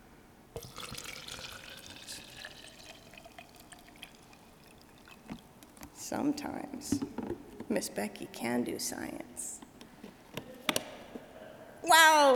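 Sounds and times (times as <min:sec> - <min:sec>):
water pouring into a container: 0:00.6 - 0:05.6
speech: 0:06.1 - 0:09.6, 0:12.1 - 0:12.3.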